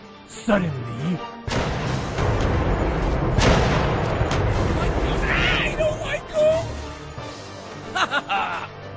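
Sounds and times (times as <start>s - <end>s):
speech: 0.3s - 1.7s
cannon fire booming in heavy blasts: 1.5s - 5.8s
laughter: 7.8s - 8.8s.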